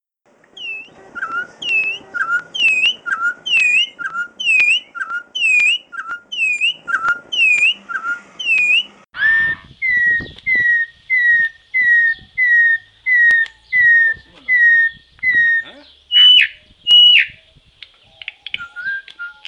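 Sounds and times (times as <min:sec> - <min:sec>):
turpial singing: 0:00.3 - 0:17.4.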